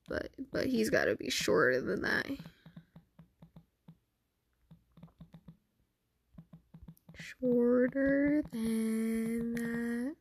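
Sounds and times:
speech: 0.1s - 2.5s, 7.4s - 10.1s
keyboard typing while texting someone: 2.3s - 4.0s, 4.6s - 5.6s, 6.3s - 10.0s.

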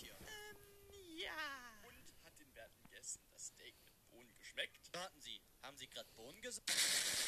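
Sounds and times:
speech: 2.6s - 7.2s
rapid sharp bangs like gunfire: 6.7s - 7.2s.

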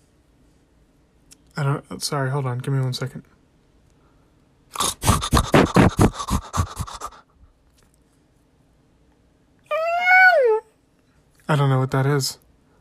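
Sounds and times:
speech: 1.6s - 3.4s, 11.5s - 12.5s
quick rhythmic breathy bursts: 4.8s - 7.2s
cat meowing: 9.7s - 10.6s.

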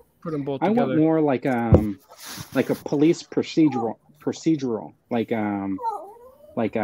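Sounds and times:
speech: 0.2s - 6.0s, 6.6s - 6.8s
dog whimpering: 3.6s - 4.0s, 5.7s - 6.6s.

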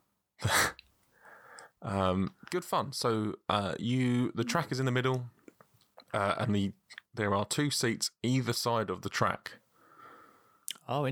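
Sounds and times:
person sneezing: 0.4s - 0.8s
breath or sniff: 0.5s - 1.7s, 9.8s - 10.6s
speech: 1.8s - 5.4s, 6.1s - 9.6s, 10.9s - 11.0s.

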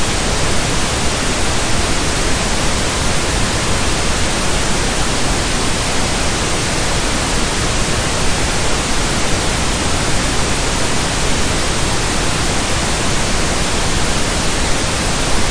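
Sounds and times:
pink noise from a sound machine: 0.0s - 15.5s.

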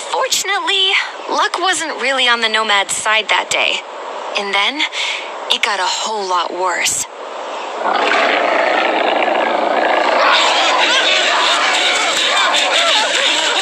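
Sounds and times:
speech: 0.2s - 7.2s, 7.8s - 8.6s
mountain lion roaring: 7.8s - 11.4s
laughter: 10.2s - 13.6s.

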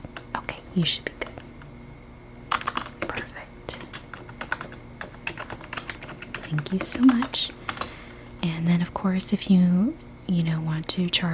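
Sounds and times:
low steady hum: 0.0s - 11.3s
speech: 0.8s - 1.2s, 6.7s - 7.6s, 8.4s - 11.3s
soft typing on a computer keyboard at a resort front desk: 2.5s - 7.9s.

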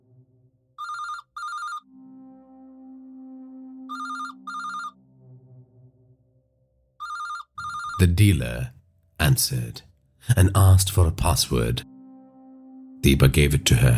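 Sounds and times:
phone ringing on an outgoing call to a dealer: 0.8s - 1.9s, 3.9s - 5.0s, 7.0s - 8.0s
speech: 8.0s - 11.9s, 13.0s - 13.9s.

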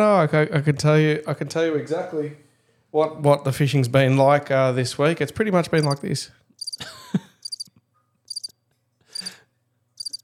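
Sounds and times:
speech: 0.0s - 7.2s
crickets chirping in a high pulsing trill: 5.8s - 6.0s, 6.6s - 6.8s, 7.4s - 7.7s, 8.3s - 8.5s, 9.2s - 9.4s, 10.0s - 10.2s.

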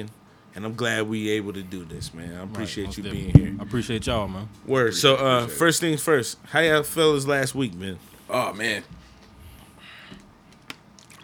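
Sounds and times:
speech: 0.0s - 9.1s
person sipping and swallowing water: 2.8s - 4.4s.

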